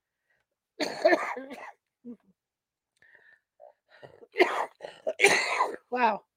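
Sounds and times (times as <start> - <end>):
person coughing: 0.8 - 1.8, 4.1 - 5.9
speech: 0.8 - 2.2, 5.2 - 6.3.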